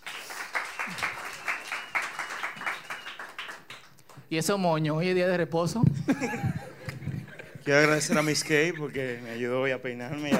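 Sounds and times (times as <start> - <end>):
audience applause: 0.0 - 4.2
speech: 4.3 - 6.7, 7.7 - 10.3
laughter: 6.0 - 9.2.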